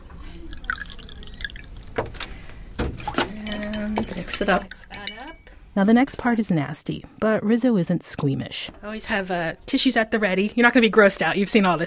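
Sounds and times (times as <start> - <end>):
distilled water poured into a neti pot: 0.4 - 1.9
speech: 4.2 - 4.9, 5.8 - 11.8.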